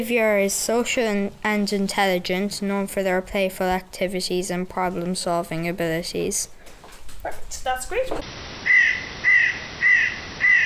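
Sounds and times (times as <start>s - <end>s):
speech: 0.0s - 6.6s, 7.2s - 8.5s
hooded crow cawing: 8.7s - 10.6s.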